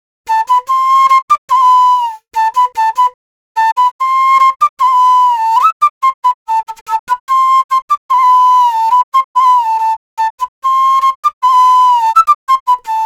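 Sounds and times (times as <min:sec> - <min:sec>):
drill flute loop in A minor: 0:00.3 - 0:13.0.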